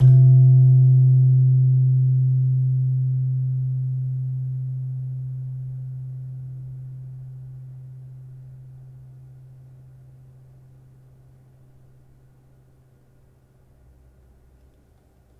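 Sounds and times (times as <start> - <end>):
gamelan slentem struck hard: 0.0 - 4.1.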